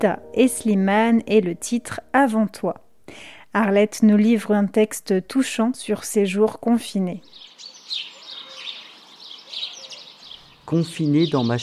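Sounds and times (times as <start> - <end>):
speech: 0.0 - 8.1, 10.7 - 11.6
birds twittering and chirping in leafy trees: 7.2 - 11.6.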